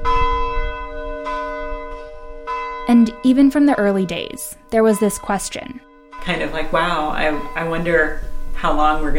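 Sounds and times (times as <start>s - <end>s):
150-year-old church bell ringing: 0.0s - 9.1s
speech: 2.9s - 9.1s.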